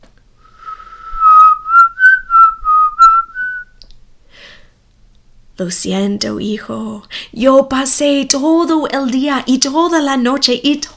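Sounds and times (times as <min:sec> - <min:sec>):
boy whistling a tune outside: 0:00.6 - 0:03.8
speech: 0:05.6 - 0:10.9.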